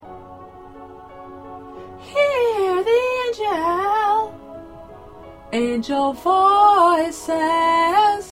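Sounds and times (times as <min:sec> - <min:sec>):
background alto voice singing a choir Christmas song part: 0:01.9 - 0:04.5, 0:05.5 - 0:08.3.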